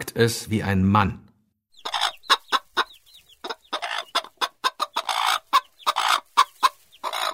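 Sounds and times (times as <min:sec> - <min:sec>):
speech: 0:00.0 - 0:01.2
hen clucking: 0:01.7 - 0:07.3.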